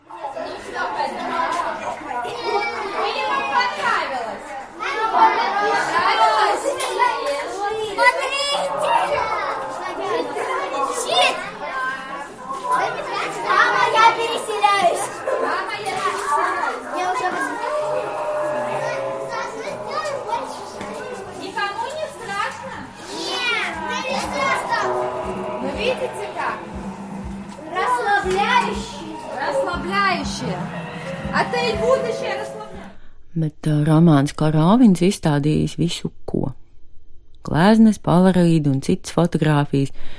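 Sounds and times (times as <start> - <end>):
excited children playing and chattering in an art installation: 0.0 - 32.9
children shrieking: 5.0 - 32.7
speech: 34.2 - 36.3, 37.6 - 40.1.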